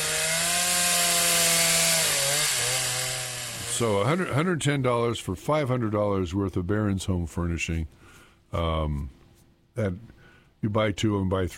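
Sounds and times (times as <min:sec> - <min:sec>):
chainsaw running: 0:00.0 - 0:04.5
speech: 0:03.8 - 0:09.2, 0:09.8 - 0:11.5.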